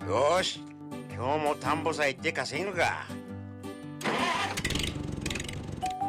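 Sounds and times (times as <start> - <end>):
speech: 0.1 - 3.2
tractor engine cranking but failing to start: 4.0 - 5.9.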